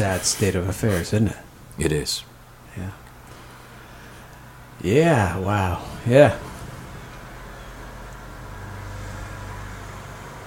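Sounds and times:
speech: 0:00.0 - 0:03.0, 0:04.8 - 0:06.5
road noise from cars driving by: 0:03.1 - 0:10.4.

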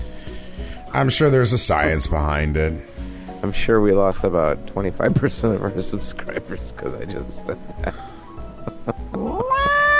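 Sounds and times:
speech: 0:00.9 - 0:08.0
cat meowing: 0:09.2 - 0:09.9.

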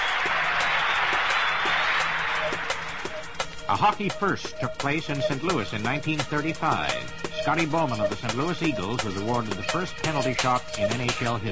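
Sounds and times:
big hockey arena crowd roaring: 0:00.0 - 0:03.8
scattered clapping in hockey arena: 0:00.0 - 0:11.5
speech: 0:03.7 - 0:11.5.

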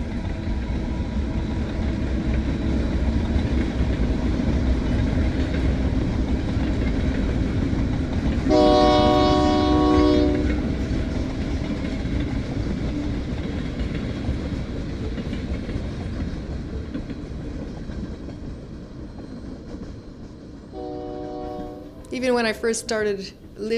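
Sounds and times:
train in Brno rumbling on rails: 0:00.0 - 0:23.7
loud train horn blast: 0:08.5 - 0:10.7, 0:20.7 - 0:22.0
speech: 0:22.2 - 0:23.7.

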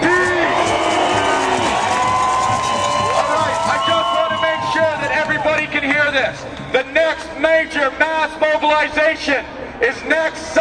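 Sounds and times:
large outdoor rally crowd roaring and cheering: 0:00.0 - 0:06.7
whoops and shouts from a rally crowd: 0:00.6 - 0:05.4
speech: 0:06.1 - 0:10.6.

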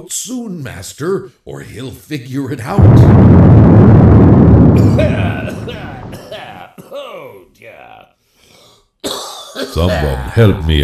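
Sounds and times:
speech: 0:00.0 - 0:04.2, 0:04.8 - 0:06.0, 0:09.6 - 0:10.8
explosion blast rumbling: 0:02.8 - 0:06.2
people groaning: 0:04.8 - 0:07.2, 0:09.8 - 0:10.4.

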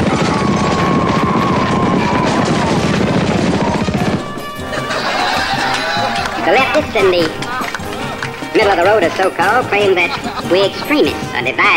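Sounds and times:
firing squad rapid gunfire: 0:00.0 - 0:06.1
laughter: 0:03.7 - 0:11.7
speech: 0:06.8 - 0:07.4, 0:08.6 - 0:11.7.

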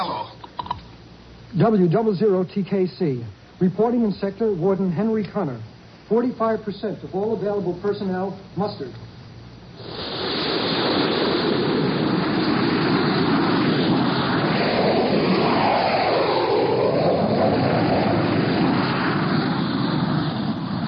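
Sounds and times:
speech: 0:01.5 - 0:09.1
jet fighters taking off with engine roar: 0:09.8 - 0:20.8.

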